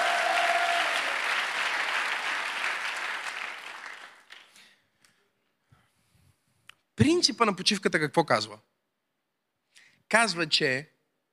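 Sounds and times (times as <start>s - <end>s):
church congregation applauding: 0.0s - 4.7s
speech: 7.0s - 8.7s, 10.1s - 10.9s.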